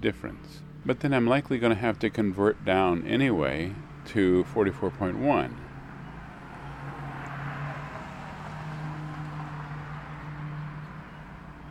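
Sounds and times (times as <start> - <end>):
speech: 0.0 - 5.6
car passing by with low humming engine: 3.8 - 11.6.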